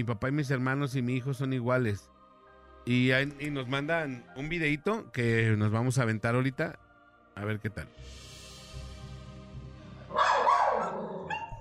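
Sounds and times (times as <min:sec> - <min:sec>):
speech: 0:00.0 - 0:02.2, 0:02.8 - 0:06.8, 0:07.4 - 0:08.3
dog barking at an empty armchair: 0:10.1 - 0:11.5.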